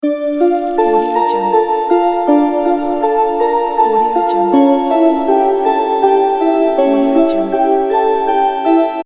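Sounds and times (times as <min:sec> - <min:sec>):
creepy game music loop: 0:00.0 - 0:09.0.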